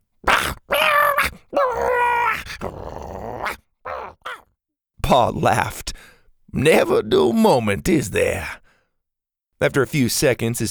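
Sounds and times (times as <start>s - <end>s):
Triceratops dinosaurs growling and snarling while locking horns: 0.2s - 4.5s
speech: 5.1s - 5.8s, 6.5s - 8.6s, 9.6s - 10.6s.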